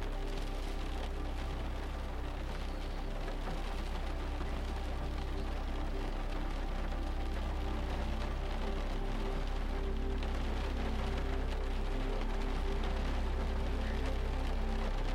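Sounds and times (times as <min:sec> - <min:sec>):
rain pattering against a house: 0:00.0 - 0:15.1.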